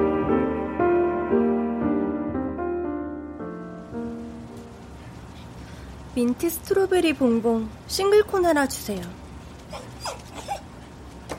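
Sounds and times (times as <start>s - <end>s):
low steady hiss: 0.0s - 11.3s
speech: 6.2s - 9.9s
puppy whimpering in a woman's arms: 9.7s - 10.7s.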